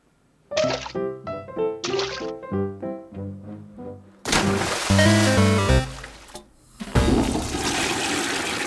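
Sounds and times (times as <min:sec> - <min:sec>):
bright bouncy musical notes: 0:04.3 - 0:06.4, 0:07.0 - 0:07.4
toilet flush with rushing gurgling water: 0:04.3 - 0:08.6.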